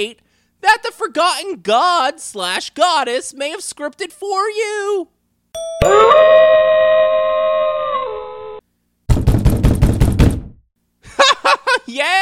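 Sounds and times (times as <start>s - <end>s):
speech: 0.0s - 7.1s, 11.4s - 12.2s
two-note doorbell chime: 5.6s - 6.5s
rapid knocking on a door: 9.1s - 10.6s.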